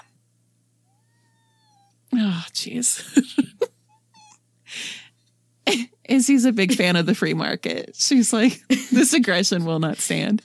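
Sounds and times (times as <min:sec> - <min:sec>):
steady low electrical hum: 0:00.0 - 0:10.4
cat meowing at a dinner plate: 0:00.9 - 0:02.0
speech: 0:02.4 - 0:03.7, 0:05.7 - 0:10.4.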